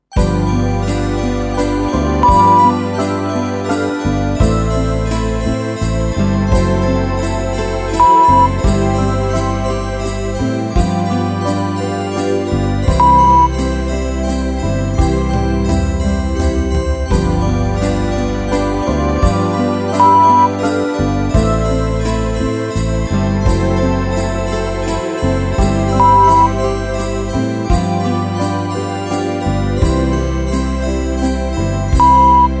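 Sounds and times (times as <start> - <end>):
carefree slow Christmas waltz in C: 0.0 - 32.5.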